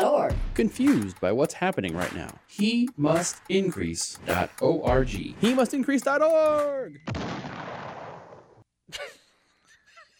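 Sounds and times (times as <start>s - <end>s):
speech: 0.6s - 7.6s, 8.9s - 9.2s
sharp second blast: 7.1s - 8.5s
loud roaring explosion: 7.1s - 8.6s.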